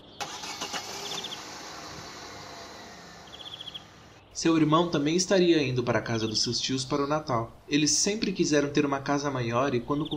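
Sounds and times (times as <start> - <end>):
birds chirping: 0.0 - 10.1
car engine humming: 0.2 - 5.0
speech: 4.4 - 10.1.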